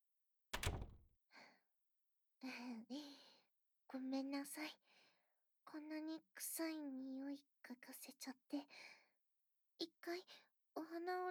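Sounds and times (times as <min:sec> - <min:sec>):
door closing with a solid thud: 0:00.6 - 0:01.0
speech: 0:02.4 - 0:03.3, 0:03.9 - 0:05.0, 0:05.7 - 0:09.0, 0:09.8 - 0:11.2.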